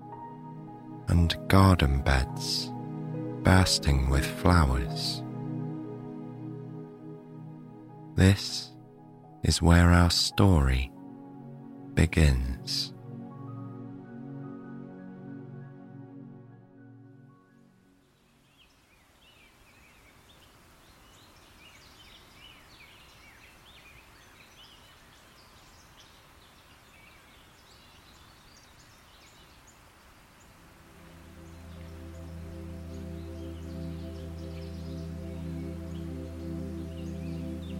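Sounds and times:
birds chirping and twittering: 0:00.0 - 0:10.9, 0:11.6 - 0:14.1, 0:17.3 - 0:37.7
speech: 0:01.1 - 0:02.7, 0:03.4 - 0:05.2, 0:08.2 - 0:08.7, 0:09.4 - 0:10.9, 0:12.0 - 0:12.9
gentle breeze rustling leaves: 0:17.9 - 0:37.7.

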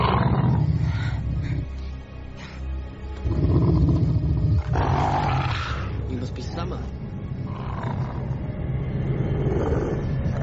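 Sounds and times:
wolf growling: 0:00.0 - 0:01.9, 0:03.2 - 0:06.0, 0:07.4 - 0:10.4.

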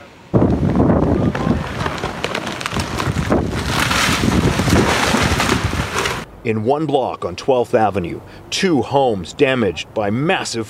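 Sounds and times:
strong wind gusts buffeting the microphone: 0:00.3 - 0:06.3
speech: 0:06.4 - 0:10.6.

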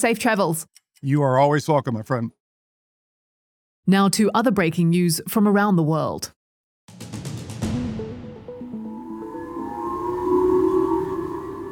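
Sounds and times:
speech: 0:00.0 - 0:02.4, 0:03.9 - 0:06.4
emergency take-cover warning sirens wailing across Hokkaido after a ballistic missile test: 0:08.7 - 0:11.7.

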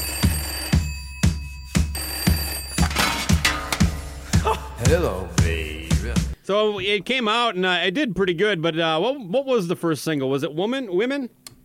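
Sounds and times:
telephone bell ringing: 0:00.0 - 0:04.0
low thumping beat: 0:00.7 - 0:06.4
speech: 0:06.5 - 0:11.6.

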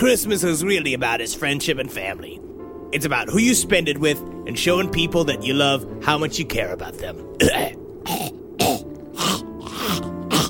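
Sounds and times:
speech: 0:00.0 - 0:07.8
harsh throat clearing: 0:07.4 - 0:10.4.

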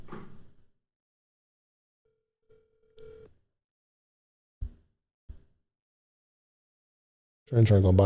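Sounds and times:
phone ringing through handset speaker: 0:02.5 - 0:03.3.

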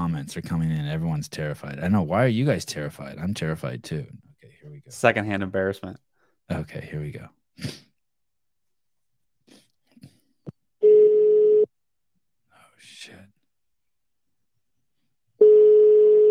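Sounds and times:
speech: 0:00.2 - 0:04.2, 0:04.9 - 0:07.8
outgoing phone call ringing tone: 0:10.8 - 0:11.7, 0:15.4 - 0:16.2.

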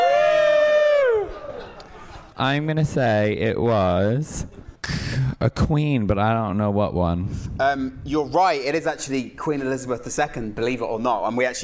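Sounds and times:
loud high whoop from the audience: 0:00.0 - 0:01.7
live audience cheering: 0:00.0 - 0:01.8
speech: 0:02.4 - 0:04.6, 0:05.4 - 0:11.6.

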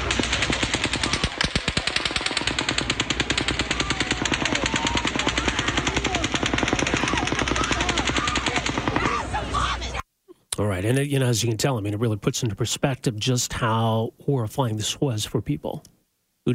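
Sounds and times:
sustained rapid automatic gunfire from a shooting: 0:00.0 - 0:09.4
speech: 0:11.1 - 0:16.5.

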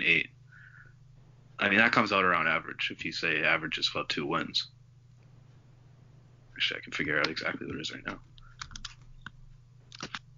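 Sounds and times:
steady low electrical hum: 0:00.0 - 0:10.3
speech: 0:01.6 - 0:04.8, 0:06.6 - 0:08.3
computer keyboard keystrokes: 0:07.2 - 0:10.3.

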